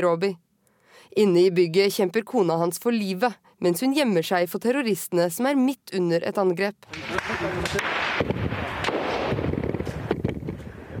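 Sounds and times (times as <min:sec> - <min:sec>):
speech: 0:00.0 - 0:00.4, 0:01.0 - 0:08.3
bursts of gunfire: 0:06.9 - 0:10.1
explosions: 0:06.9 - 0:10.9.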